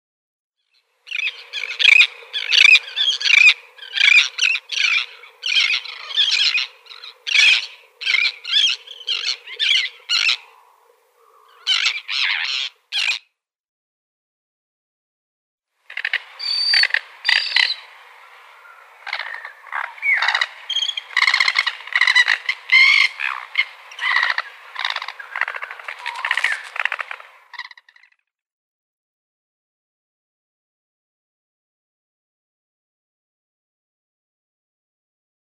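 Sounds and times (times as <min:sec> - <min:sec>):
lesser crested tern calling: 0:01.0 - 0:13.2, 0:15.9 - 0:28.1.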